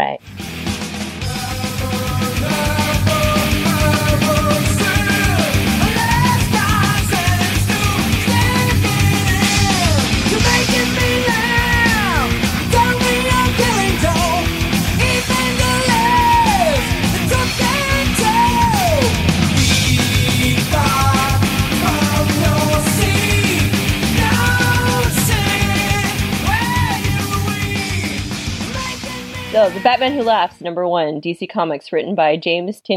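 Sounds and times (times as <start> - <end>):
song with bright melodic line over driving low end: 0.0 - 30.5
speech: 29.9 - 32.9.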